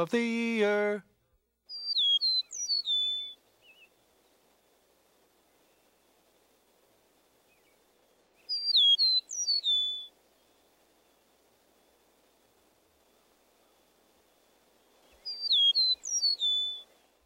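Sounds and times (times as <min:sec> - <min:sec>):
speech: 0:00.0 - 0:01.1
faint steady hiss: 0:00.0 - 0:17.2
eastern meadowlark singing whistled songs: 0:01.7 - 0:03.9, 0:08.4 - 0:10.5, 0:15.0 - 0:17.0.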